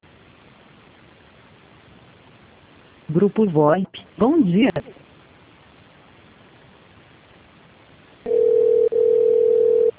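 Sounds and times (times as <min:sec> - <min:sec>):
speech: 0:03.1 - 0:05.0
telephone dial tone on an internal office call: 0:08.3 - 0:09.9.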